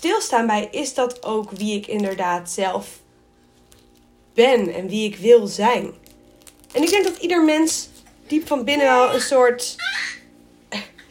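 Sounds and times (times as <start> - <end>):
speech: 0.1 - 3.0, 4.4 - 6.1, 6.7 - 10.8
baby laughing with high-pitched squeals: 9.0 - 10.2.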